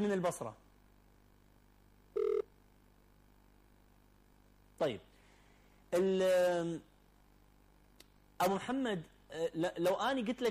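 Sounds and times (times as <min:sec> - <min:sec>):
speech: 0:00.0 - 0:00.7, 0:04.8 - 0:05.1, 0:05.9 - 0:06.9, 0:08.4 - 0:10.4
short electronic telephone beep announcing an incoming call: 0:02.2 - 0:02.5.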